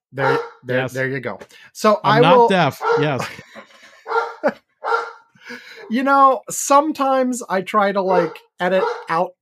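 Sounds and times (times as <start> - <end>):
speech: 0.1 - 3.7, 4.4 - 4.6, 5.5 - 9.3
dog barking: 0.2 - 0.6, 2.2 - 3.2, 4.0 - 5.3, 8.1 - 9.2.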